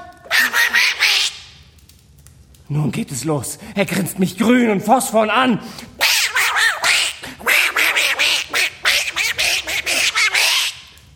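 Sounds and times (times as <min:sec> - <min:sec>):
group of ducks quacking: 0:00.3 - 0:01.4, 0:06.0 - 0:10.9
speech: 0:02.7 - 0:05.9.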